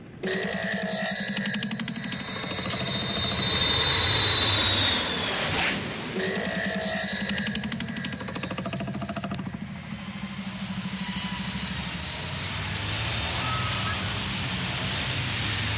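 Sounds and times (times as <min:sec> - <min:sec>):
airplane engine warming up: 0:00.0 - 0:15.7.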